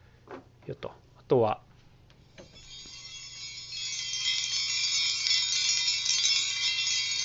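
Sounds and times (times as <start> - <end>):
speech: 0.7 - 1.7
hanging chime of burned hammered-flat spoons and forks jingling: 2.4 - 7.2.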